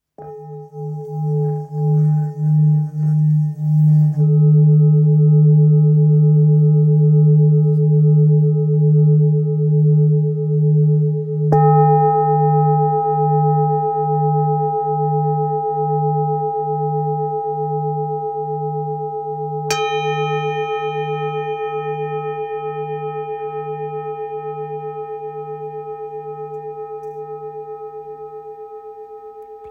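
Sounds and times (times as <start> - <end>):
770g full moon bowl in D: 0.0 - 29.7.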